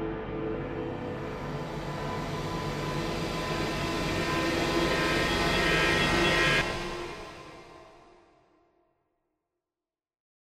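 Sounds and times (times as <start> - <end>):
long horror accent rise: 0.1 - 8.4.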